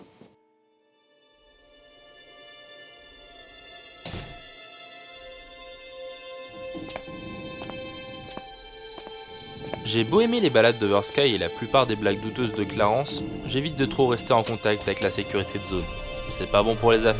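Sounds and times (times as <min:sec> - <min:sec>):
door shutting with a dull thunk: 0:04.0 - 0:04.5
speech: 0:06.9 - 0:07.4, 0:09.8 - 0:17.1.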